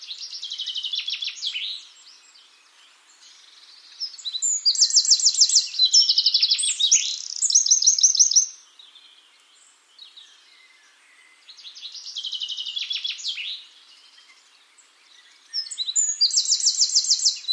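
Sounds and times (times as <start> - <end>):
Eurasian wren Troglodytes troglodytes song: 0.0 - 17.5
bird twittering: 4.1 - 8.5, 15.6 - 17.5.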